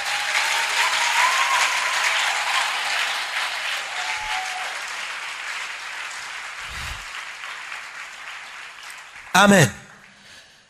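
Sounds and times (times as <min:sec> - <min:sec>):
faint cheers and whoops: 0:00.0 - 0:04.8
large congregation applauding: 0:00.0 - 0:10.6
speech: 0:09.4 - 0:09.8.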